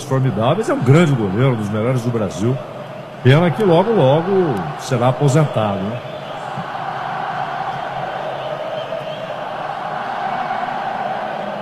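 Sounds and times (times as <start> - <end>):
football stadium crowd of supporters roaring and chanting: 0.0 - 11.6
speech: 0.1 - 6.2.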